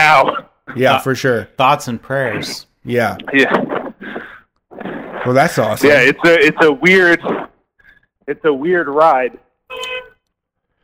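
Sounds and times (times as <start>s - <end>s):
speech: 0.2s - 3.7s, 5.2s - 7.4s, 8.3s - 9.9s
cab car horn blast: 9.7s - 10.2s.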